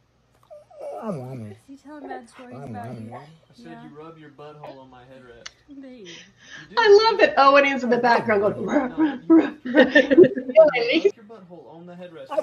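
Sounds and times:
dog vocalizing in protest with whiny grumbling yowls: 0.4s - 3.4s
speech: 1.0s - 12.4s
laughter: 7.6s - 11.1s.

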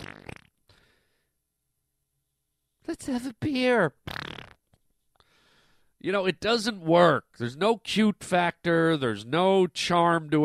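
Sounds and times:
fart: 0.0s - 0.6s, 4.0s - 4.7s
speech: 2.9s - 4.4s, 6.0s - 10.4s.

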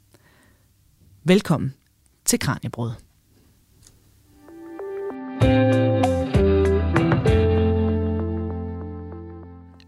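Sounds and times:
speech: 1.2s - 3.1s
loud pop music with distorted effects-heavy instruments: 4.6s - 9.4s.

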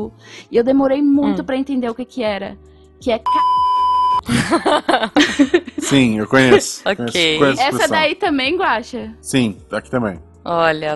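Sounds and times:
speech: 0.0s - 3.6s, 4.2s - 10.9s
electronic censor bleep over a swear word: 3.3s - 4.2s
laughter: 4.3s - 8.0s.

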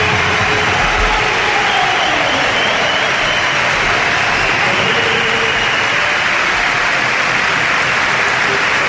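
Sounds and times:
large indoor arena crowd applauding and cheering for a basketball player: 0.0s - 8.8s.

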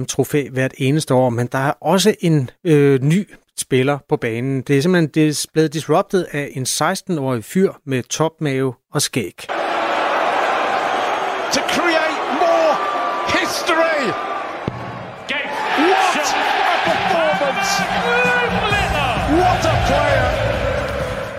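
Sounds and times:
speech: 0.0s - 9.8s
large arena crowd roaring and cheering at a darts match: 9.5s - 21.3s.

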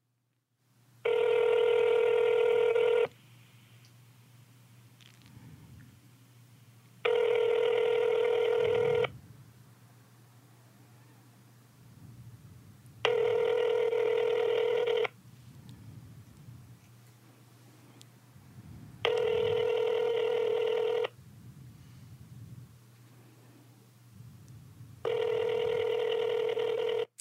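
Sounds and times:
phone ringback tone: 1.1s - 3.1s, 7.1s - 9.1s, 13.1s - 15.1s, 19.0s - 21.1s, 25.0s - 27.1s.

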